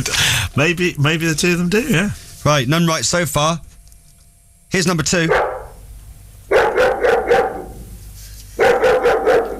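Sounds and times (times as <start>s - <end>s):
speech: 0.0s - 3.7s, 4.7s - 5.5s
Alsatian dog barking: 5.3s - 5.8s, 6.5s - 7.9s, 8.6s - 9.5s.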